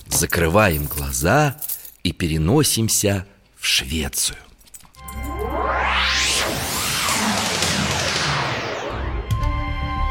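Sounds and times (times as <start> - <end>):
speech: 0.2 - 4.5
arrow whistling past: 5.3 - 9.9.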